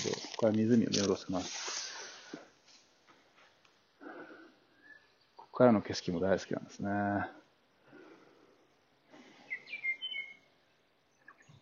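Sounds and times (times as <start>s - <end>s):
speech: 0.4s - 2.4s, 5.6s - 7.4s
soft breathy wind-like ambience: 1.3s - 5.5s, 7.2s - 11.5s
wild birds chirping outdoors: 3.9s - 11.6s.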